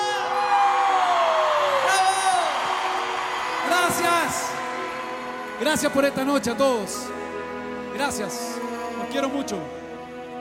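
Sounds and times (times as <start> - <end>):
large crowd cheering with whoops and shouts: 0.0 - 6.1
large crowd clapping: 0.5 - 7.0
speech: 5.6 - 7.3, 8.0 - 9.8.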